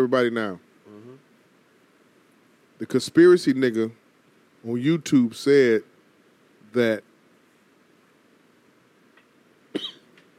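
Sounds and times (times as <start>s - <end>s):
speech: 0.0s - 0.7s, 2.8s - 4.0s, 4.6s - 5.9s, 6.7s - 7.1s
person coughing: 9.8s - 10.1s.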